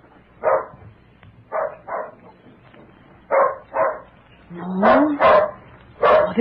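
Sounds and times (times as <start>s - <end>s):
dog barking at a stranger: 0.4s - 0.8s, 1.5s - 2.3s, 3.3s - 4.1s, 4.8s - 6.3s.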